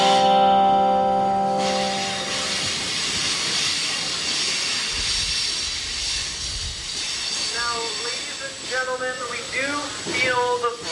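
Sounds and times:
short tonal train horn blast: 0.0s - 2.8s
train pulling away: 0.0s - 10.9s.

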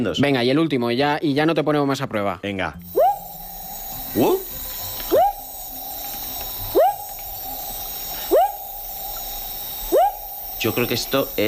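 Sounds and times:
speech: 0.0s - 3.0s, 4.1s - 4.5s, 10.6s - 11.4s
frog calling with rising whoop-like notes: 2.9s - 11.2s.

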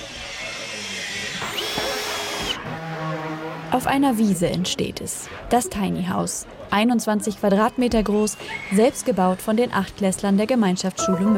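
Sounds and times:
power drill whining at a construction site on a meadow: 0.0s - 2.8s
speech: 3.7s - 11.3s.

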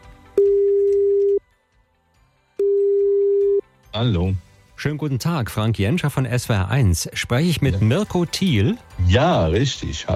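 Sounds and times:
ringback tones of an outgoing phone call: 0.4s - 1.4s, 2.6s - 3.6s
speech: 3.9s - 10.1s.

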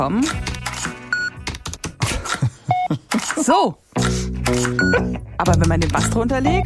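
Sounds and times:
speech: 0.0s - 0.5s, 2.9s - 6.6s
short electronic payment terminal beeps: 1.1s - 1.4s, 2.7s - 3.0s, 4.7s - 5.0s.

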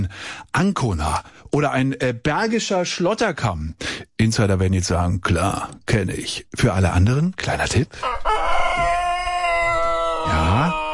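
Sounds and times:
speech: 0.0s - 8.4s, 10.3s - 10.8s
rooster crowing: 8.0s - 10.9s.

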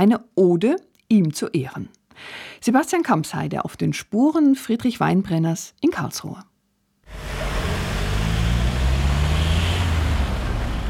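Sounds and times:
speech: 0.0s - 6.5s
city traffic roar at a busy intersection: 7.1s - 10.8s
vehicle droning past: 7.1s - 10.8s.

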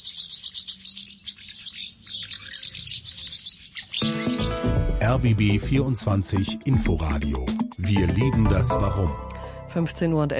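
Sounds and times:
flock of house martins twittering: 0.0s - 5.6s
speech: 5.1s - 10.3s.

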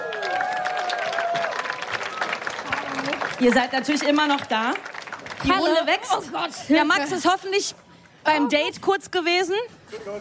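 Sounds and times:
audience whoops and cheers: 0.0s - 2.5s
audience applause: 0.0s - 6.2s
speech: 3.4s - 10.1s.

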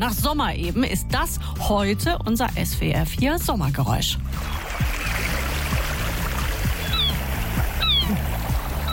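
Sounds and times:
speech: 0.0s - 4.9s
ocean waves washing and splashing: 4.3s - 8.9s
seagulls screeching overhead: 4.4s - 8.9s.

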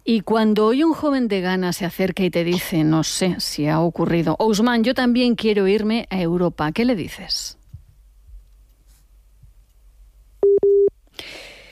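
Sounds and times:
speech: 0.1s - 7.6s
telephone busy tone after a dropped call: 10.4s - 10.9s.

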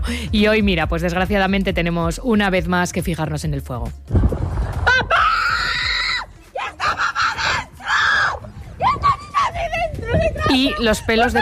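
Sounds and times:
speech: 0.1s - 4.4s, 10.6s - 11.3s
woman screaming desperately as flames approach her house: 4.9s - 11.3s.

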